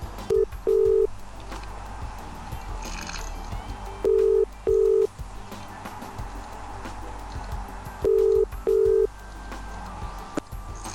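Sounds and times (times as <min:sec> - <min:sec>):
faint hiss: 0:00.0 - 0:10.9
phone ringback tone with paired electronic beeps as a call connects: 0:00.3 - 0:01.1, 0:04.1 - 0:05.1, 0:08.0 - 0:09.1.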